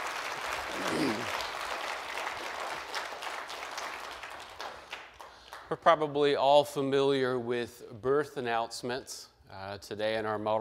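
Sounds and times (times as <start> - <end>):
audience applauding a choir: 0.0 - 5.6
speech: 5.7 - 10.6.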